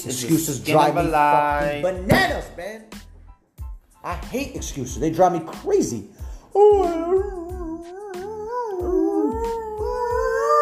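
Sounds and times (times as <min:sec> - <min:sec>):
speech: 0:00.0 - 0:03.0, 0:04.0 - 0:08.0
wolves howling: 0:06.6 - 0:10.6.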